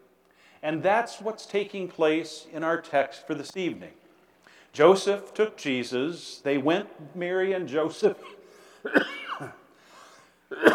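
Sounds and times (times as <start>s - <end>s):
speech: 0.6s - 4.0s, 4.7s - 9.6s
person coughing during a church sermon: 8.2s - 10.7s
throat clearing sound: 10.2s - 10.7s.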